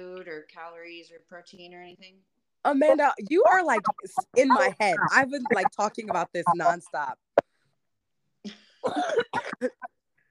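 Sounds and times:
speech: 0:00.5 - 0:07.3, 0:08.4 - 0:10.0
faint trailing throat sound: 0:02.8 - 0:06.8, 0:08.5 - 0:10.0
harsh coughing: 0:08.5 - 0:09.9.

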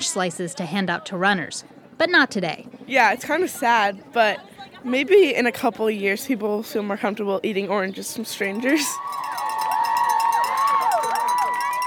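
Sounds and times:
speech: 0:00.1 - 0:09.4
dense crowd of college spectators screaming and cheering for passing marathon runners: 0:08.7 - 0:11.8.

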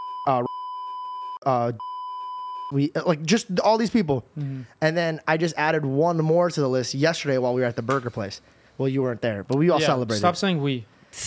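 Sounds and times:
high censor bleep tone over spoken names: 0:00.0 - 0:02.7
speech: 0:00.2 - 0:00.6, 0:01.4 - 0:01.9, 0:02.7 - 0:11.2.

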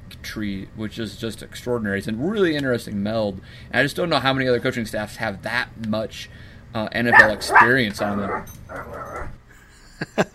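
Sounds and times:
speech: 0:00.4 - 0:09.4, 0:10.0 - 0:10.3
dog whimpering and whining excitedly: 0:07.2 - 0:09.4.

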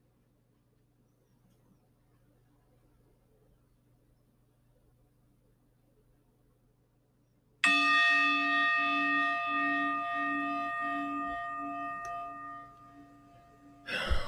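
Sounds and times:
single bell struck and ringing: 0:07.6 - 0:14.2.

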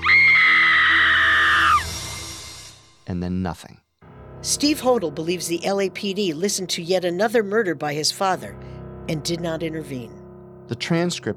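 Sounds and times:
woman screaming in a basement: 0:00.0 - 0:01.9
speech: 0:03.1 - 0:11.3.

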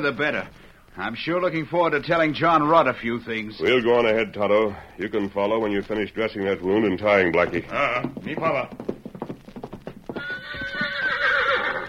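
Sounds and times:
speech: 0:00.0 - 0:08.9
horse hooves clip-clopping at a canter: 0:00.0 - 0:11.8
horse whinnying: 0:09.8 - 0:11.8.

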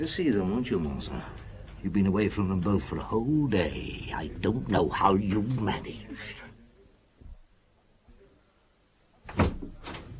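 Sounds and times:
speech: 0:00.0 - 0:06.4
faint room noise: 0:00.0 - 0:10.1
door opening with a sharp wooden clunk and rattle: 0:09.2 - 0:10.1.

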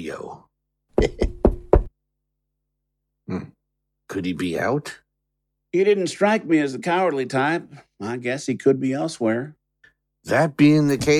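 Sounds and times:
speech: 0:00.0 - 0:01.2, 0:04.1 - 0:05.0, 0:05.7 - 0:09.6, 0:10.2 - 0:11.1
firm knocking on a door: 0:01.0 - 0:01.9.

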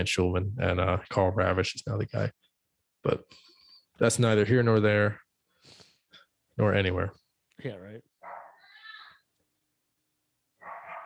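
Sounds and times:
speech: 0:00.0 - 0:02.4, 0:03.0 - 0:05.8, 0:06.6 - 0:08.1
dogs barking and whimpering with high-pitched whiny yelping: 0:08.2 - 0:08.6, 0:10.6 - 0:11.0.

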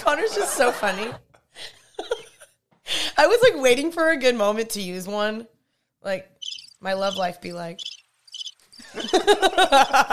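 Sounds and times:
speech: 0:00.0 - 0:01.8, 0:03.2 - 0:07.9, 0:08.8 - 0:10.1
laughter: 0:00.0 - 0:02.4, 0:08.8 - 0:10.1
crickets chirping: 0:06.4 - 0:09.5.

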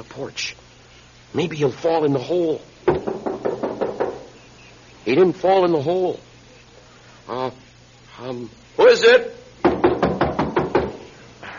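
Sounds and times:
speech: 0:00.2 - 0:00.6, 0:01.3 - 0:03.0, 0:05.1 - 0:06.3, 0:07.3 - 0:07.6, 0:08.2 - 0:09.4
knocking on a wooden door: 0:02.9 - 0:04.3, 0:09.6 - 0:11.1.

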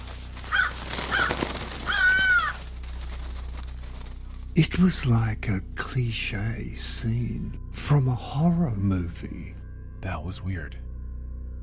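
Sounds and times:
flock of crows cawing flying out of an open-sided barn: 0:00.0 - 0:04.4
speech: 0:04.6 - 0:10.8.

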